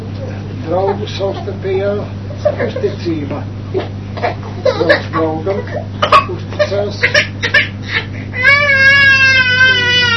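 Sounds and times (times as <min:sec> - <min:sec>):
low steady hum: 0:00.0 - 0:10.1
speech: 0:00.7 - 0:08.5
young child crying: 0:07.2 - 0:10.1.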